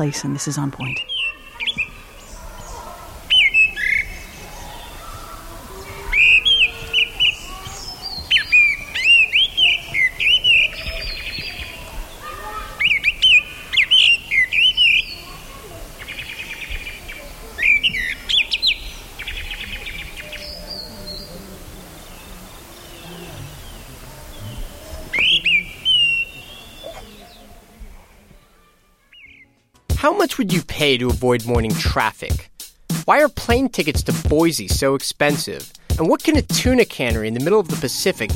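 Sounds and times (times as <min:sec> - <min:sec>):
speech: 0:00.0 - 0:01.1, 0:30.4 - 0:32.5, 0:33.1 - 0:38.3
gray-winged blackbird song recorded in India: 0:00.0 - 0:27.6, 0:29.1 - 0:29.6.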